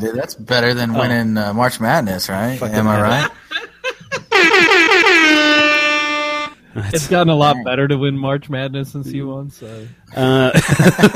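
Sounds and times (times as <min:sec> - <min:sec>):
speech: 0:00.0 - 0:03.4, 0:06.8 - 0:11.1
people laughing: 0:02.9 - 0:04.4, 0:10.2 - 0:11.1
air horn blast: 0:04.3 - 0:06.6.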